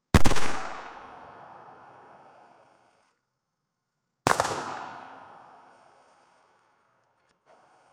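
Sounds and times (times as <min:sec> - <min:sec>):
assault rifle single gunshot: 0:00.2 - 0:01.3, 0:04.3 - 0:05.6.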